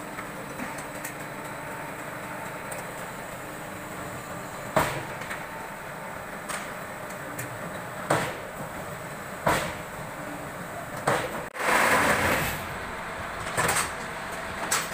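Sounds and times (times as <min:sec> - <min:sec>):
ABM4S-15 concrete brick machine running with hum and rattle in Malaysia: 0:00.0 - 0:14.9.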